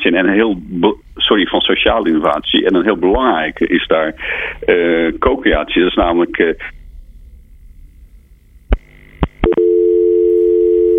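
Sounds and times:
speech: 0.1s - 6.8s
phone clicks and blips as a phone call drops: 8.7s - 9.8s
telephone dial tone after dropped call: 9.4s - 10.9s.

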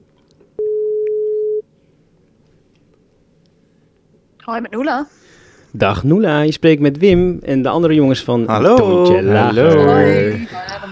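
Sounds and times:
telephone tone as a call is placed: 0.6s - 1.6s
speech: 4.5s - 10.9s.

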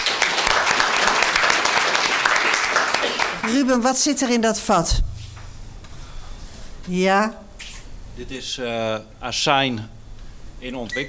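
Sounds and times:
audience applause: 0.0s - 4.1s
speech: 3.5s - 5.1s, 6.9s - 7.4s, 8.2s - 10.0s, 10.6s - 11.0s.

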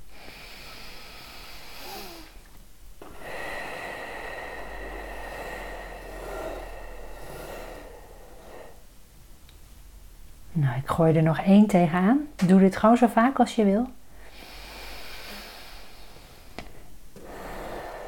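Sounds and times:
extended rushing exhale: 0.0s - 2.4s, 3.0s - 9.0s, 14.2s - 18.0s
long airy deep inhale into the belly: 0.0s - 9.0s, 14.0s - 18.0s
speech: 10.6s - 14.0s.

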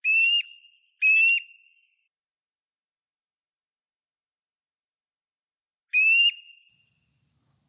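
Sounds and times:
Eurasian nuthatch song of loud clear whistled notes: 0.0s - 2.0s, 5.9s - 7.0s.

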